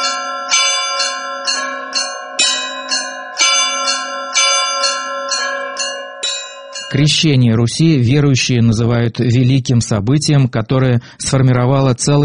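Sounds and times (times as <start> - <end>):
church bells pealing: 0.0 - 8.1
speech: 6.9 - 12.2.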